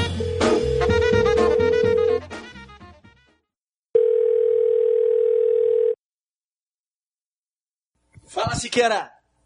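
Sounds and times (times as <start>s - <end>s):
telephone dial tone: 0.2s - 2.2s, 4.0s - 6.0s
speech: 8.6s - 9.2s.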